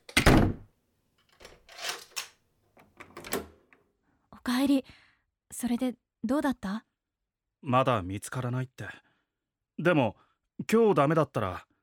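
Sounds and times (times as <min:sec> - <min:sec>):
front door shutting with a heavy thud: 0:00.2 - 0:00.7
metallic clicks and rattles of front door lock being turned: 0:01.2 - 0:03.8
speech: 0:04.4 - 0:06.9, 0:07.6 - 0:09.0, 0:09.8 - 0:11.7.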